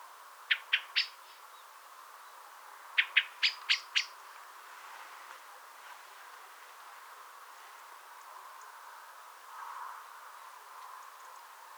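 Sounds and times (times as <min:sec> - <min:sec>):
common blackbird Turdus merula calling with hard abrupt chink notes: 0:00.5 - 0:01.2, 0:03.0 - 0:04.2.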